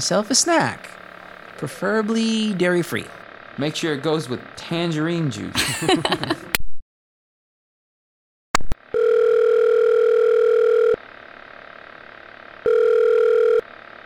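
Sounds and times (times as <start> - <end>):
speech: 0.0 - 1.0, 1.6 - 6.6
laughter: 5.5 - 6.6
phone line click: 8.6 - 11.0
telephone electronic ring tone: 8.9 - 11.0, 12.6 - 13.6.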